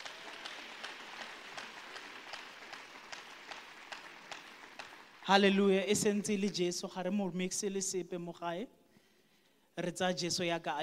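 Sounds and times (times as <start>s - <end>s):
audience applause with many hands clapping: 0.0s - 5.7s
speech: 5.3s - 8.8s, 9.8s - 10.8s.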